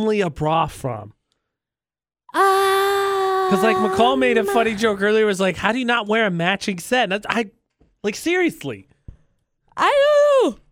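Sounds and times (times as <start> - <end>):
speech: 0.0 - 1.2, 3.5 - 8.9, 9.8 - 10.6
person yawning: 2.3 - 5.0.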